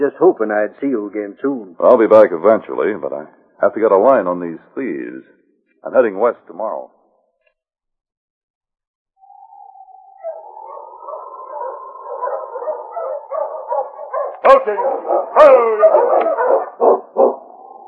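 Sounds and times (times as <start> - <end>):
speech: 0.0 - 7.0, 14.5 - 17.4
tired sled dog team whining and yipping in the snow: 10.2 - 17.8.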